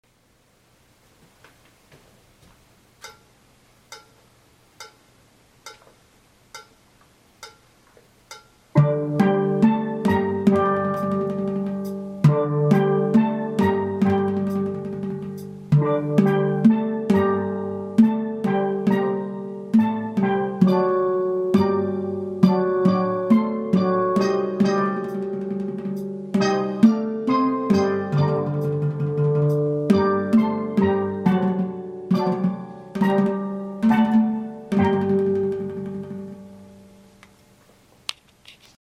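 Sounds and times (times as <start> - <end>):
steel band playing: 8.3 - 37.2
intro guitar: 8.8 - 37.0.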